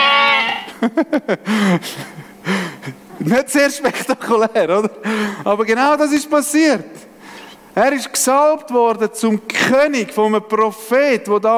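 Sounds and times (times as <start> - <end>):
sheep bleating: 0.0 - 0.7
speech: 0.8 - 7.1, 7.8 - 11.5.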